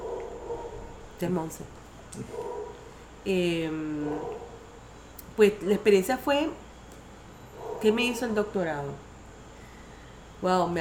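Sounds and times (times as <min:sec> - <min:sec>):
dog barking: 0:00.0 - 0:00.9, 0:02.3 - 0:02.8, 0:07.6 - 0:08.0
speech: 0:01.2 - 0:02.4, 0:03.2 - 0:04.4, 0:05.4 - 0:06.6, 0:07.8 - 0:09.1, 0:10.4 - 0:10.8.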